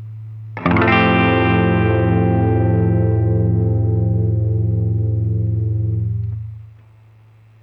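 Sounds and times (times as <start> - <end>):
F add nine chord: 0.6 - 6.6.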